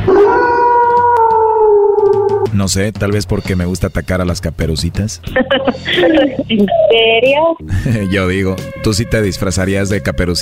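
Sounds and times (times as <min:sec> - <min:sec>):
wolf howling: 0:00.0 - 0:02.5
speech: 0:02.6 - 0:10.4
laughter: 0:05.3 - 0:06.8.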